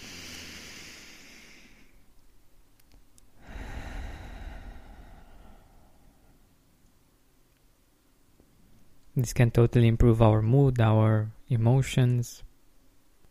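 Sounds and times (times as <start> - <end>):
slow deep breathing: 0.0 - 2.1, 3.4 - 6.8
speech: 9.2 - 12.5.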